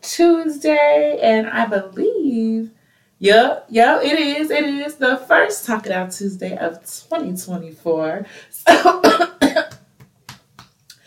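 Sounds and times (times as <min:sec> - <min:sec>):
speech: 0:00.2 - 0:09.6
person coughing: 0:08.7 - 0:09.8.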